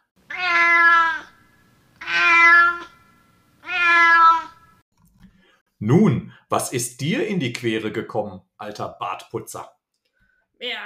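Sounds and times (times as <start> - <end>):
cat meowing: 0.3 - 1.4, 2.0 - 3.0, 3.6 - 4.6
speech: 5.8 - 9.8, 10.6 - 10.8.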